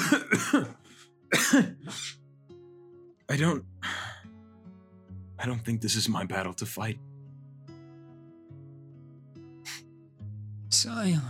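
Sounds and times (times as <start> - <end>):
person coughing: 0.0 - 2.2
speech: 1.5 - 1.8, 3.3 - 3.7, 5.4 - 7.1, 10.8 - 11.2.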